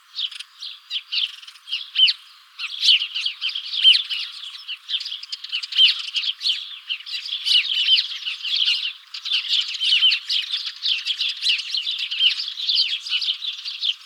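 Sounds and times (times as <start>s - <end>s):
house sparrow Passer domesticus chirping chatter: 0.0s - 14.0s.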